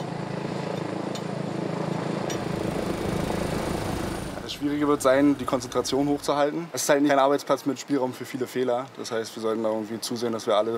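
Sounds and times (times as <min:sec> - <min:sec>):
helicopter flying over difficult terrain: 0:00.0 - 0:06.6
speech: 0:04.6 - 0:10.7.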